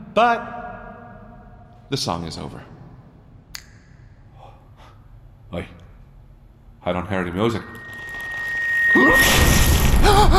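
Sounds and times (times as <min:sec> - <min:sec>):
speech: 0:00.2 - 0:00.6, 0:01.9 - 0:02.8, 0:05.5 - 0:05.8, 0:06.8 - 0:07.8, 0:08.9 - 0:10.3
explosion blowing a character's head apart in a video game: 0:09.0 - 0:10.2.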